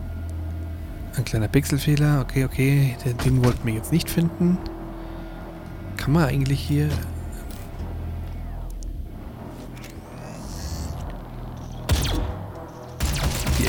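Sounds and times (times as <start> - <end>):
low engine-like rumble in video game: 0.0 - 13.5
speech: 1.2 - 4.8, 6.0 - 7.1
video game gunfire: 11.9 - 13.6.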